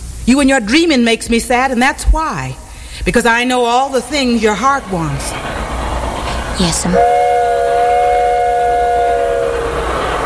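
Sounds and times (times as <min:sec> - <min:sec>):
hissing steam: 0:00.0 - 0:10.2
speech: 0:00.3 - 0:05.7, 0:06.6 - 0:07.2
loud steam train whistle blowing: 0:06.8 - 0:10.2.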